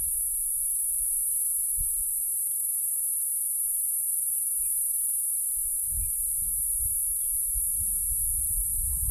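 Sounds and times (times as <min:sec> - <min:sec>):
Platypleura cf. catenata cicada singing near the R324 road in Western Cape, South Africa: 0:00.0 - 0:09.0
low wind rumble: 0:05.8 - 0:09.0.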